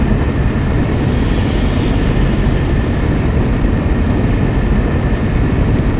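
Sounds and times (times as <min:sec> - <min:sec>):
plasma vent: 0:00.2 - 0:05.9.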